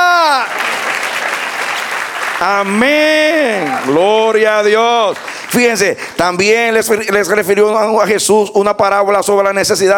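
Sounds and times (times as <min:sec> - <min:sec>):
person shouting during a church service: 0:00.0 - 0:00.6, 0:02.9 - 0:04.2
audience applause during a church service: 0:00.0 - 0:06.3
speech: 0:02.4 - 0:09.9.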